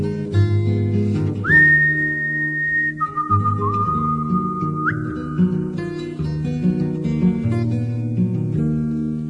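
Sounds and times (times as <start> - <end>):
acoustic guitar accompaniment: 0.0 - 9.2
human whistling used as a musical instrument: 1.4 - 5.9.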